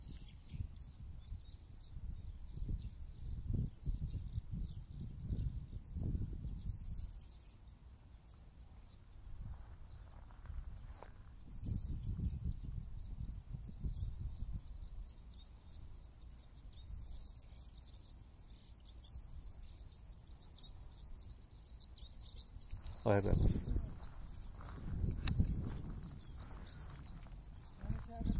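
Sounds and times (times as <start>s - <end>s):
low rumbling gusts of wind: 0.0s - 17.7s, 19.0s - 28.3s
Eurasian skylarks singing over a development site: 0.0s - 28.3s
speech: 23.0s - 24.0s.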